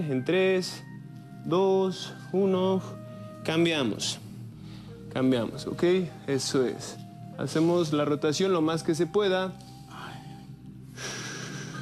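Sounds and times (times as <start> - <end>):
speech: 0.0 - 4.2, 5.2 - 9.7
heavy labored breathing: 4.0 - 5.1, 9.6 - 11.8.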